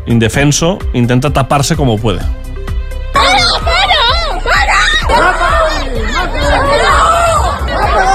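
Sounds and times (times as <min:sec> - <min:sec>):
speech: 0:00.1 - 0:02.4, 0:05.1 - 0:05.5
crowd shouting and yelling: 0:03.2 - 0:08.1.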